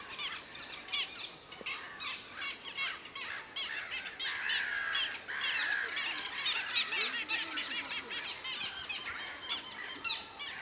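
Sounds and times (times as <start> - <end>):
little gull Hydrocoloeus minutus calls: 0.0 - 10.6.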